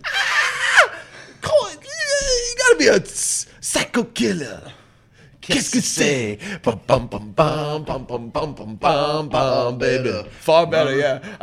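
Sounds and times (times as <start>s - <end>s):
person imitating a shrill high-pitched scream: 0.0s - 1.0s
speech: 2.8s - 4.8s, 5.5s - 11.4s.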